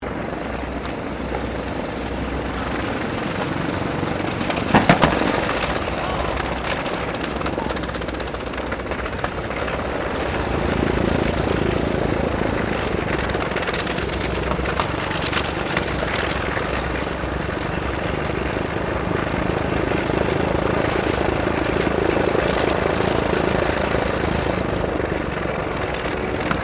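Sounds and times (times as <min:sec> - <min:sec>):
Lockheed L-1049 Super Constellation aircraft engine startup: 0:00.0 - 0:26.6.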